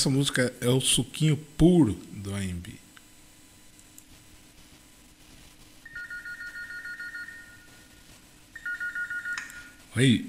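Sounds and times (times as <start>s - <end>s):
speech: 0.0s - 2.8s, 10.0s - 10.2s
telephone ringing in rapid trilling tones at a song's opening: 5.9s - 7.9s, 8.6s - 9.8s.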